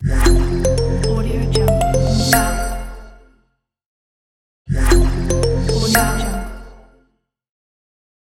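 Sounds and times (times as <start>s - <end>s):
simple corporate business logo jingle: 0.2s - 3.1s, 5.0s - 6.5s.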